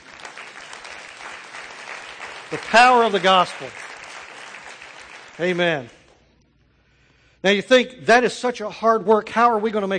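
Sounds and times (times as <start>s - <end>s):
audience applause: 0.0s - 6.2s
speech: 2.5s - 3.8s, 5.4s - 6.0s, 7.4s - 9.9s.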